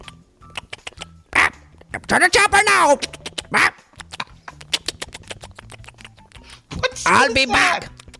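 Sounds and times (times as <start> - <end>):
person imitating parrot squawks: 0.0 - 6.5
speech: 2.1 - 3.8, 7.1 - 8.0.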